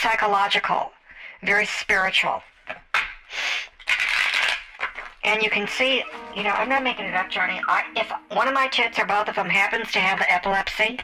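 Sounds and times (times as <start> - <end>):
speech: 0.0 - 3.7, 5.2 - 11.0
deck of cards being riffle-shuffled: 3.0 - 6.8.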